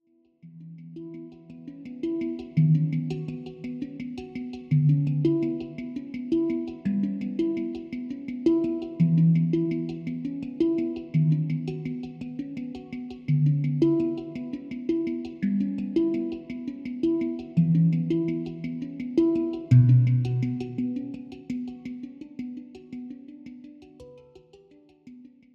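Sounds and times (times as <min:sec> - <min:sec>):
hang drum: 0:02.0 - 0:21.7.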